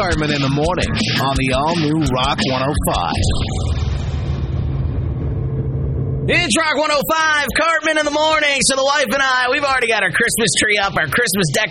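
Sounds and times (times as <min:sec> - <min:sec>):
speech: 0:00.0 - 0:03.8, 0:06.3 - 0:11.6
car engine rumbling as the car pulls away: 0:02.8 - 0:06.7.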